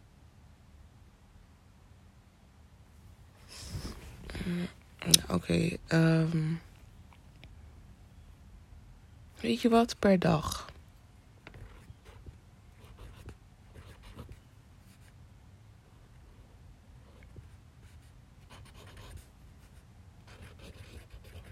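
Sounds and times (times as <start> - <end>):
speech: 4.5 - 6.7, 9.4 - 10.7
marker pen scratching on paper: 11.5 - 15.2, 17.0 - 21.4.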